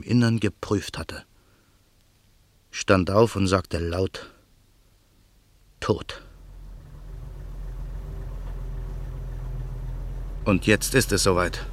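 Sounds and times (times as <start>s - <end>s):
speech: 0.0s - 1.3s, 2.8s - 4.4s, 5.9s - 6.2s, 10.4s - 11.7s
car engine running quietly at night: 6.3s - 11.7s.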